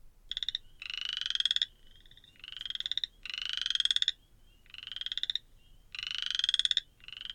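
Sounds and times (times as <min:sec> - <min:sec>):
wood frogs and spring peepers calling: 0:00.3 - 0:07.3.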